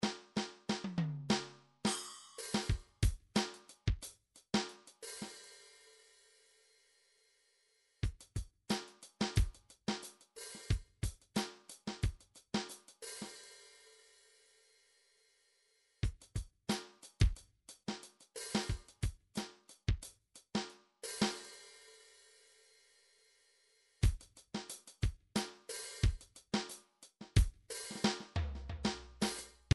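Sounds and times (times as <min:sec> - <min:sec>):
MIDI drums: 0:00.0 - 0:05.4, 0:08.0 - 0:13.3, 0:16.0 - 0:21.5, 0:24.0 - 0:29.7.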